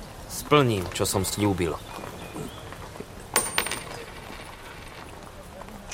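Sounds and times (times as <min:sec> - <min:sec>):
speech: 0:00.4 - 0:02.6
single coin dropped clinking: 0:03.3 - 0:05.0.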